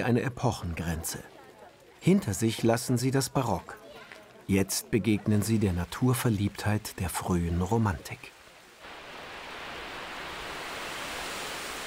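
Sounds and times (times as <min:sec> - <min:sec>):
speech: 0:00.0 - 0:01.4, 0:02.0 - 0:03.8, 0:04.5 - 0:08.4
artificial waterfall in a park roaring: 0:05.2 - 0:11.8.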